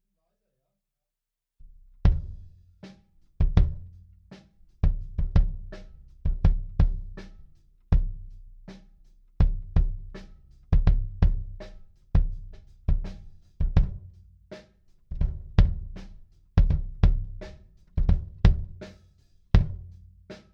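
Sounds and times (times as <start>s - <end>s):
bass drum: 1.6s - 2.8s, 3.4s - 20.5s.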